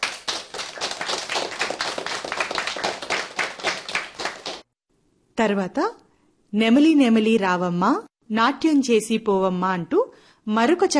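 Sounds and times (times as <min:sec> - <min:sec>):
crowd clapping for singers after a song: 0:00.0 - 0:04.7
speech: 0:05.4 - 0:10.9.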